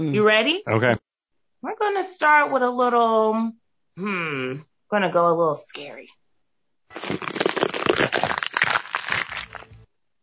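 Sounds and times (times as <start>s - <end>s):
speech: 0.0s - 6.2s, 6.9s - 7.4s
green pepper being torn apart: 6.9s - 9.8s.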